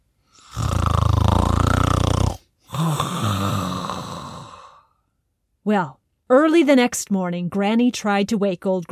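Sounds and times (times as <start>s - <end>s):
loud snoring: 0.4s - 4.8s
speech: 5.7s - 8.9s.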